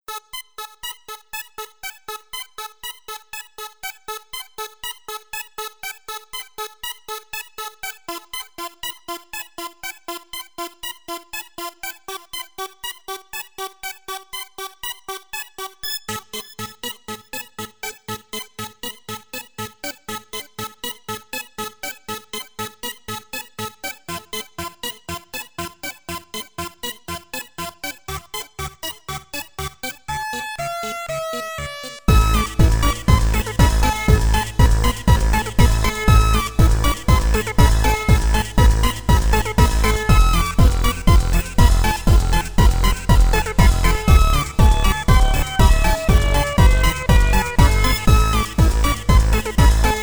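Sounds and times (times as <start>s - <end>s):
energetic flow warm-up music at 432 Hz: 30.2s - 50.0s.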